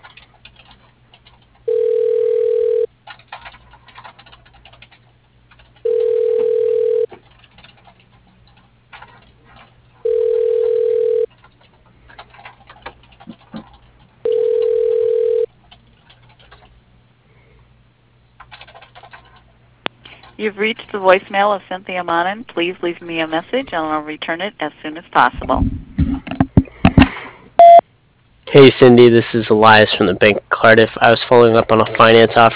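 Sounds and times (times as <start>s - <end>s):
telephone ringback tone while a call is transferred: 1.7s - 2.9s, 5.8s - 7.1s, 10.0s - 11.3s, 14.2s - 15.5s, 27.6s - 27.8s
speech: 20.5s - 25.8s, 28.6s - 32.5s.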